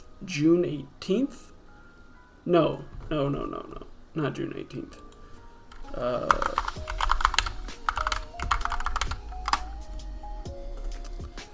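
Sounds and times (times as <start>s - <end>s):
speech: 0.2s - 1.5s, 2.4s - 5.0s, 5.9s - 6.9s
typing on a computer keyboard: 5.7s - 9.7s.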